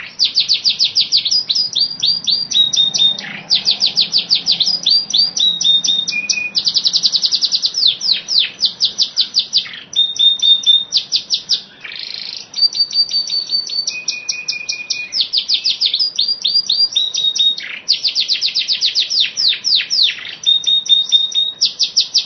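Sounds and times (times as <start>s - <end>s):
training bird song with fast chattering high downslurred notes and whistles: 0.0s - 22.2s.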